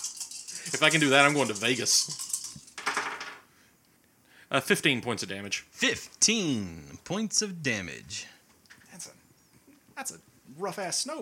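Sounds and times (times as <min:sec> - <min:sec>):
dice clattering on a table: 0:00.0 - 0:03.4
speech: 0:00.7 - 0:02.2, 0:04.5 - 0:08.4, 0:09.0 - 0:09.2, 0:10.0 - 0:11.2.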